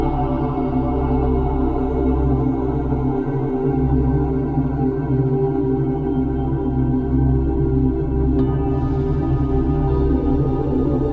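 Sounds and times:
steady layered drone of sustained low and middle tones: 0.0s - 11.1s.

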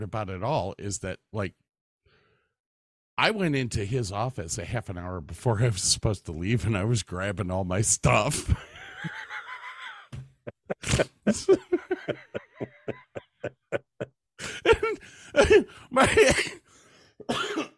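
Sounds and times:
speech: 0.0s - 1.6s, 3.2s - 9.3s, 10.9s - 12.7s, 15.4s - 16.6s
laughter: 8.6s - 16.3s
person having a coughing fit: 10.7s - 16.6s, 17.2s - 17.7s.

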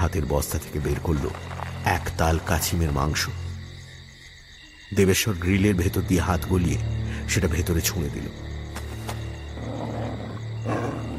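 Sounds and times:
speech: 0.0s - 3.5s, 4.9s - 8.5s
large Alsatian dog growling low at a lump of meat in a courtyard: 9.6s - 11.1s.

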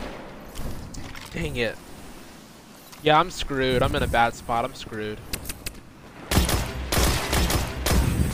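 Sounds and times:
speech: 1.4s - 1.9s, 3.0s - 5.4s
rapid gunfire in a first-person shooter video game: 6.3s - 8.2s.

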